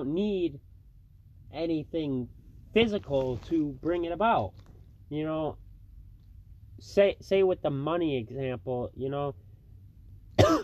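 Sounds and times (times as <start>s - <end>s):
speech: 0.0s - 0.7s, 1.5s - 5.6s, 6.8s - 9.4s
quiet low hum: 0.0s - 10.6s
person coughing: 10.4s - 10.6s.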